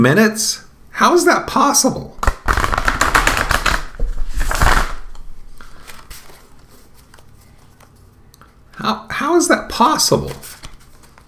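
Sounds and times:
speech: 0.0 - 2.3, 9.4 - 10.5
deck of cards shuffling with crisp riffling clicks: 2.2 - 8.1, 10.1 - 11.2.

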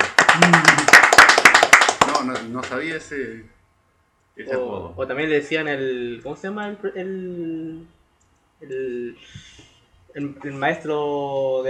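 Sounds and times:
few people clapping hands: 0.0 - 2.9
speech: 0.4 - 0.8, 2.5 - 3.6, 4.4 - 8.0, 8.6 - 11.6.

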